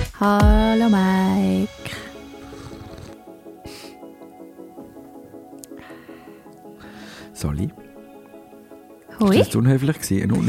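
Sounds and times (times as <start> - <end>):
speech: 0.2 - 2.0, 9.2 - 10.4
steady tonal background: 1.2 - 10.4
person slurping a drink: 2.5 - 3.2.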